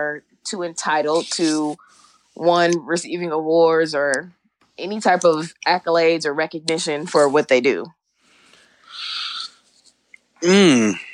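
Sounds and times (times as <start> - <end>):
speech: 0.0 - 8.0, 10.4 - 11.1
person yawning: 10.4 - 11.1.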